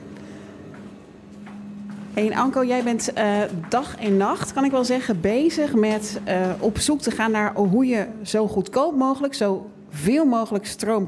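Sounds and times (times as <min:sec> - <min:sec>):
footsteps walking down into a basement: 0:00.0 - 0:08.6
steady low electrical hum: 0:00.0 - 0:11.0
speech: 0:02.2 - 0:11.0.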